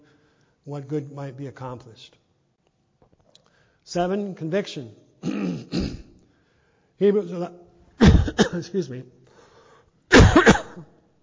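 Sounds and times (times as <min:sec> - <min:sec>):
speech: 0:00.7 - 0:02.2, 0:03.9 - 0:05.8, 0:07.0 - 0:07.6, 0:08.2 - 0:09.2
person clearing throat: 0:05.2 - 0:06.2, 0:08.0 - 0:08.6, 0:10.1 - 0:10.9.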